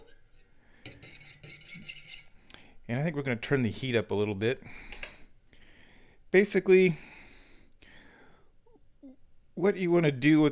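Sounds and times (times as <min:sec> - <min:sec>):
spoon stirring a powdered mixture in a metal pot: 0:00.0 - 0:02.5
speech: 0:02.9 - 0:04.9, 0:06.3 - 0:07.1, 0:09.6 - 0:10.5.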